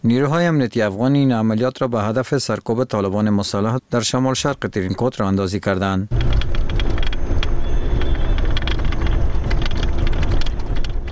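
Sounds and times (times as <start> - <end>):
speech: 0.0 - 6.7
Humvee armored vehicles of Afghan forces driving toward Tarin Kot: 6.1 - 11.1.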